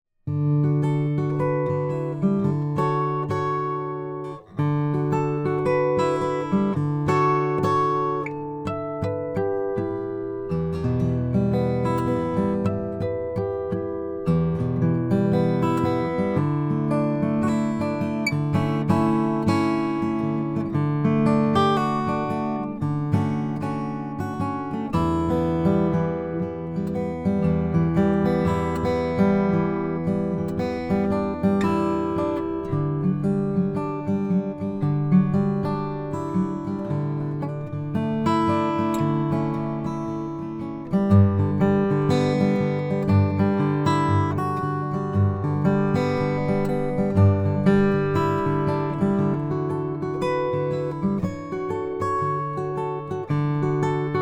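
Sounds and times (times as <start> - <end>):
Froggy Bottom F12c Deluxe Guatemalan rosewood acoustic guitar: 0.2 - 54.2.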